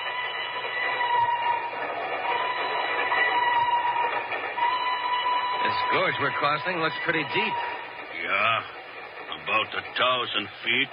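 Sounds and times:
train rumbling across a trestle: 0.0 - 10.9
speech: 5.8 - 8.8, 9.5 - 10.9.

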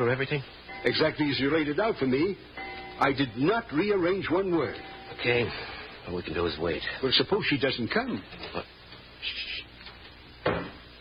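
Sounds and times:
speech: 0.0 - 9.5
front door shutting with a solid thud: 10.4 - 10.8.

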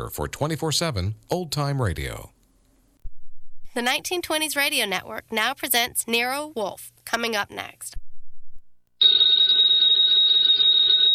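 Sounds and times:
speech: 0.0 - 2.4, 3.7 - 8.0
telephone bell ringing: 9.0 - 11.1.

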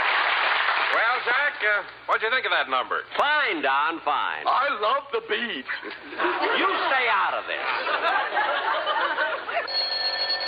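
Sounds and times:
speech: 1.0 - 9.4
laughter: 5.4 - 9.7
telephone bell ringing: 9.7 - 10.4.

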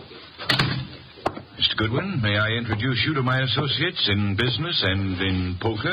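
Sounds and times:
heavier door thuds: 0.5 - 0.9
speech: 1.8 - 5.9.

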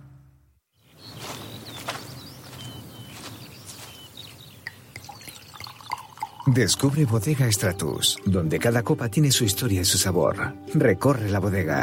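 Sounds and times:
Canarian sparkling mineral water pouring: 4.4 - 8.3
speech: 6.5 - 11.8.

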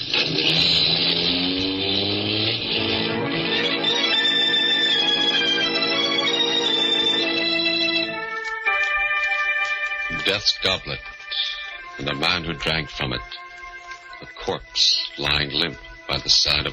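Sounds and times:
car engine roaring as the car speeds away on a lonely road: 0.0 - 7.6
clock striking with bell-like tones: 2.6 - 16.7
speech: 10.4 - 11.1, 12.0 - 13.4, 14.4 - 16.7.

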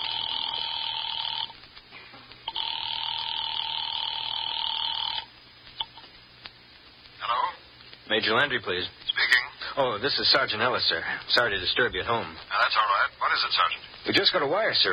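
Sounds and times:
telephone line ringing with electronic rings: 0.0 - 1.6, 2.5 - 6.0
speech: 8.2 - 14.9.

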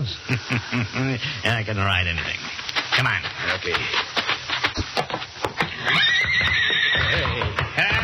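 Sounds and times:
laughter: 0.0 - 1.4
speech: 0.0 - 5.1, 5.8 - 6.6
stallion kicking its stall: 3.6 - 8.0
stallion whinnying shrilly: 5.7 - 8.0.

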